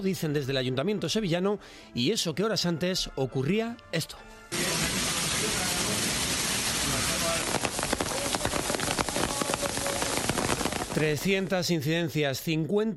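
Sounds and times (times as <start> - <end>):
speech: 0.0 - 4.6, 11.0 - 12.9
heavy rain roaring in a storm: 4.5 - 11.5
hail pelting: 4.5 - 11.6.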